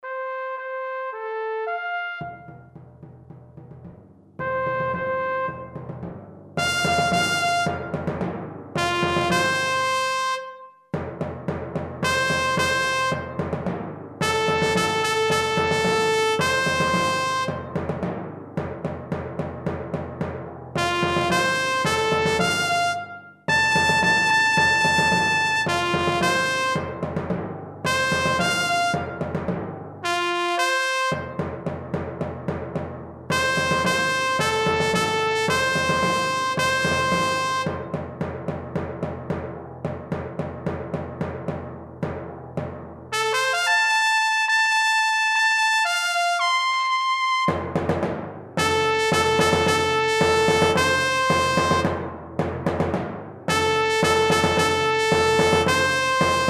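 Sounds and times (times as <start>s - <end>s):
trumpets: 0.0s - 2.8s, 4.4s - 10.9s, 12.0s - 18.2s, 20.8s - 27.2s, 27.8s - 31.6s, 33.3s - 38.0s, 43.1s - 48.0s, 48.6s - 52.2s, 53.5s - 56.4s
drums: 1.8s - 44.6s, 47.4s - 56.4s.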